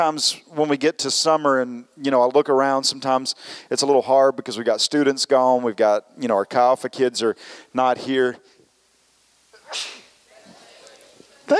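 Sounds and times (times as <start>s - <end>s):
speech: 0.0s - 8.5s, 9.7s - 10.0s
person sneezing during a church sermon: 9.5s - 11.0s.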